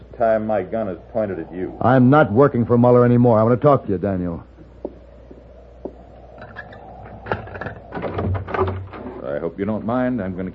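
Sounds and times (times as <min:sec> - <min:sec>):
speech: 0:00.2 - 0:04.5, 0:09.6 - 0:10.5
door creaking and rattling as it swings open: 0:06.4 - 0:09.4.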